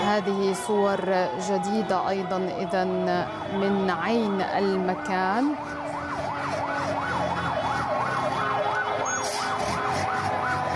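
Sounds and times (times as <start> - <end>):
ambulance and civil defense vehicle sirens wailing: 0.0 - 10.7
constant rumble of street traffic in Damascus: 0.0 - 10.7
speech: 0.1 - 6.0.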